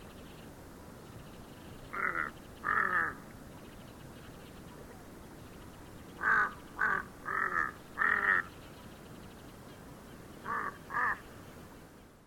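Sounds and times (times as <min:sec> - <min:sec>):
background hiss: 0:00.0 - 0:12.2
Tibetan crow cawing in Nepal: 0:01.9 - 0:03.2, 0:06.2 - 0:08.5, 0:10.4 - 0:11.2.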